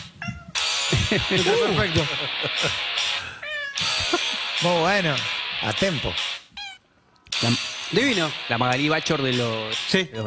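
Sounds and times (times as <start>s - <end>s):
cat meowing along to a song: 0.0s - 0.6s, 3.4s - 3.9s, 6.6s - 6.8s
loud busy music: 0.6s - 6.5s, 7.4s - 10.1s
laughter: 0.9s - 2.9s, 3.8s - 4.5s
speech: 1.1s - 3.0s, 4.6s - 6.3s, 7.4s - 10.2s.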